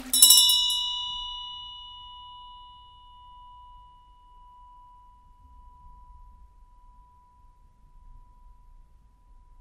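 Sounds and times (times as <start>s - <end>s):
meditation bell ringing: 0.1s - 8.4s.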